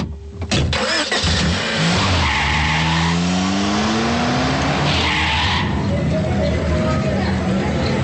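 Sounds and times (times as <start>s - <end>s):
broad wash of street traffic noise: 0.0s - 8.0s
passing vehicles in a city square: 0.8s - 8.0s
indistinct voices of people talking: 5.6s - 8.0s.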